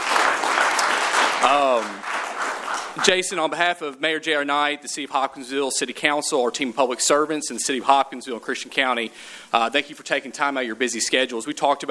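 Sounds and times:
audience applause at a city government event: 0:00.0 - 0:03.3
speech: 0:01.4 - 0:02.0, 0:03.0 - 0:11.8.

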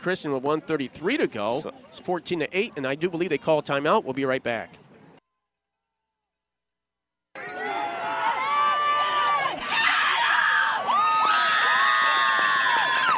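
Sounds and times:
speech: 0:00.0 - 0:04.8
large crowd cheering at a football game: 0:07.4 - 0:13.1.

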